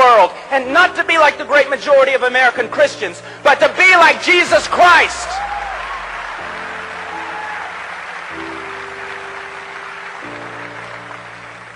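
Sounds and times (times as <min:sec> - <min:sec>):
speech: 0:00.3 - 0:05.5
crowd applauding: 0:04.0 - 0:11.7.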